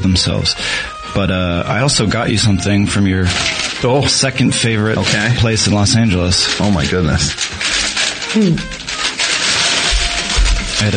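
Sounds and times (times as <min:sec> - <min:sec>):
speech: 0:00.1 - 0:07.7, 0:08.3 - 0:08.8, 0:10.8 - 0:10.9
paper bag rustling and crinkling: 0:01.7 - 0:10.9.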